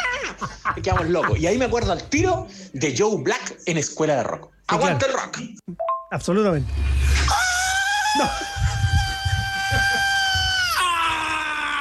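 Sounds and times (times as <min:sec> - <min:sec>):
laughter: 0:00.0 - 0:02.5, 0:08.0 - 0:11.3
speech: 0:00.3 - 0:07.4, 0:08.2 - 0:08.6
long piercing high-pitched scream in a live thrash metal song: 0:06.7 - 0:11.7.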